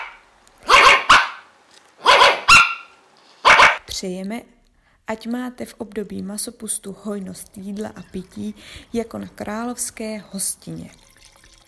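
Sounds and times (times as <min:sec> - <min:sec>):
dogs of a pack barking: 0:00.0 - 0:03.8
speech: 0:04.0 - 0:11.0.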